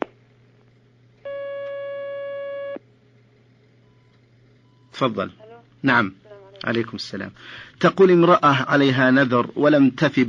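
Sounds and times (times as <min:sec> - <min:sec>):
faint low hum: 0:00.0 - 0:10.2
telephone line tone as a caller is put through: 0:01.3 - 0:02.8
speech: 0:05.0 - 0:10.2.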